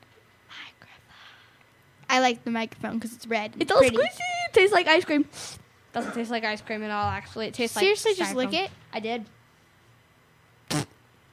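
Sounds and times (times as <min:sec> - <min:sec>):
speech: 0:02.2 - 0:09.4
short raspy fart: 0:10.6 - 0:11.0.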